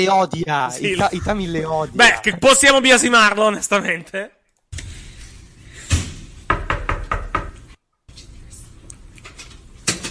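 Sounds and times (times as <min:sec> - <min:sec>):
speech: 0:00.0 - 0:04.4
knocking on a hotel room door: 0:06.5 - 0:07.6.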